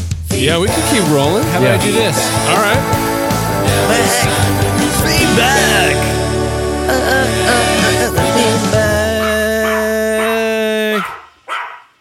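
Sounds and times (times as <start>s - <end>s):
speech: 0.4s - 6.2s
loud bright musical jingle with sustained tones: 0.7s - 9.1s
dog barking and yelping: 9.2s - 11.9s.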